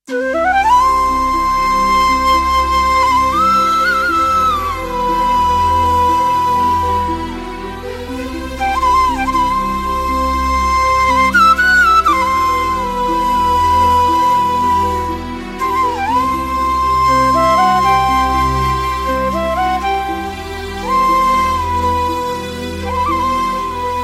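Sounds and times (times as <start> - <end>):
background flute: 0.0 - 24.0.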